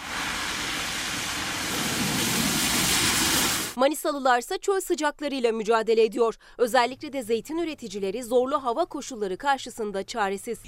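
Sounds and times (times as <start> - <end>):
heavy rain downpour: 0.0 - 3.8
speech: 3.8 - 10.6.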